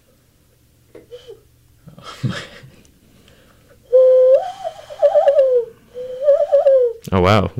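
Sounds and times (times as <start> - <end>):
speech: 2.2 - 2.6, 7.1 - 7.5
person whistling an imitation of a bird call: 3.9 - 7.0.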